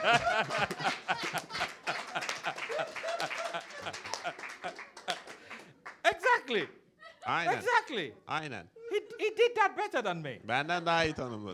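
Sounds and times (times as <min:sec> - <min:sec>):
crowd clapping: 0:00.0 - 0:06.7
laughter: 0:00.0 - 0:08.0, 0:08.8 - 0:09.7, 0:10.5 - 0:11.5
speech: 0:06.5 - 0:08.8, 0:09.4 - 0:11.5.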